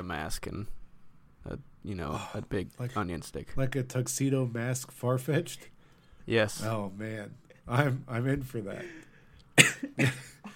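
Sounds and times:
speech: 0.1 - 0.8, 1.4 - 5.7, 6.3 - 10.3
person coughing harshly: 9.6 - 10.5.

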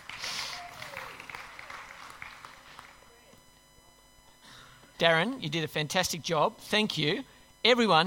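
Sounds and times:
crowd applauding: 0.0 - 3.4
speech: 5.0 - 8.0.

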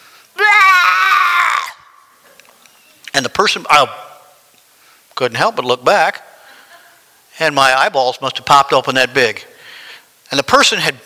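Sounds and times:
person screaming blood-curdling scream during prayer in tongues: 0.4 - 2.0
speech: 3.3 - 4.0, 5.2 - 6.3, 7.4 - 9.5, 10.5 - 11.0.

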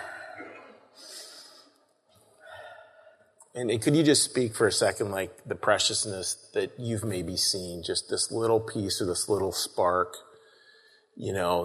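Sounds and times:
group of people taking a breath together: 0.0 - 1.8, 2.4 - 3.3
speech: 3.6 - 10.3, 11.2 - 11.6.

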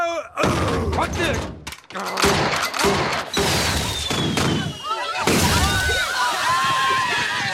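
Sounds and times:
speech: 0.3 - 3.0
tear gas fired by a prison guard at a prison rodeo: 2.2 - 5.8
tear gas canisters whistling and whooshing through the air: 3.6 - 7.5.

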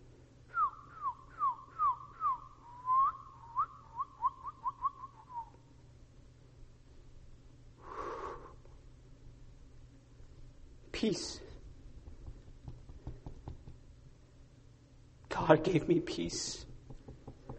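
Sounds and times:
bird singing descending whistled notes: 0.5 - 5.5
speech: 11.0 - 11.4, 15.5 - 16.7.

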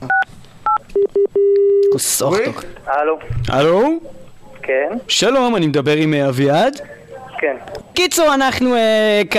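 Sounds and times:
telephone keypad dual-tone beeps: 0.1 - 1.9
speech: 2.1 - 9.3.

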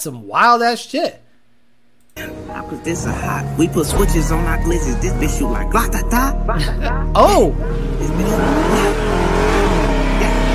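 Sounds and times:
speech: 0.0 - 1.2, 2.2 - 9.0
car engine revving in a played video of stolen cars: 2.2 - 10.5.

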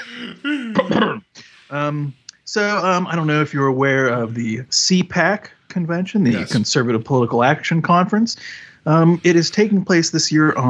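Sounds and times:
person clearing throat and coughing: 0.0 - 1.9, 6.3 - 6.7
speech: 0.2 - 0.9, 1.7 - 10.6.

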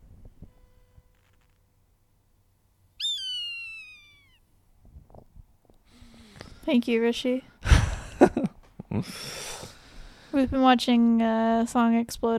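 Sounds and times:
Swainson's hawk scream: 3.0 - 4.4
speech: 6.7 - 7.5, 9.0 - 9.4, 10.4 - 12.3.

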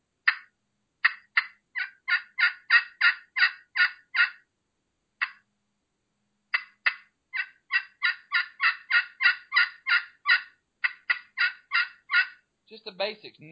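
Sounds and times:
turkey call producing basic hen clucks and yelps: 0.2 - 4.5, 5.2 - 5.4, 6.5 - 12.5
speech: 12.7 - 13.5.

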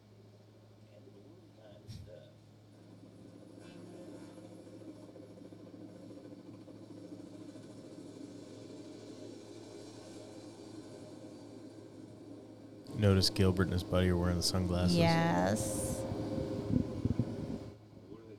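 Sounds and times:
police helicopter hovering overhead with engine whine and rotor thrum: 4.3 - 9.0, 12.2 - 17.7
speech: 13.0 - 16.0.

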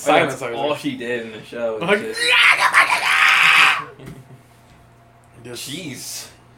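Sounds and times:
speech: 0.0 - 3.2, 5.4 - 6.4
person screaming in imitation of a shrieking mother: 2.0 - 4.0.

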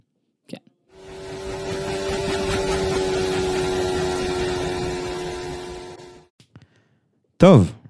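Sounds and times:
Mercedes Formula 1 car bouncing along a straight at Bahrain during pre-season testing: 1.0 - 6.3
speech: 7.4 - 7.8.

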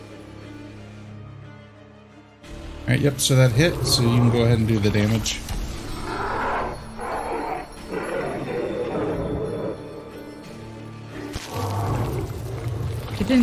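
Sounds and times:
speech: 2.9 - 5.6
tiger roaring in a game: 3.5 - 5.2, 5.9 - 10.3, 11.1 - 13.4.

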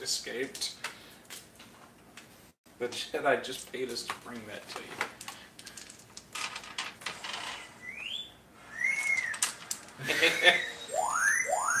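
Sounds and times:
speech: 0.0 - 1.0, 2.8 - 5.2
astromech droid chirping and whistling in electronic bursts: 7.8 - 9.5, 10.2 - 11.7
laughter: 10.0 - 10.8.

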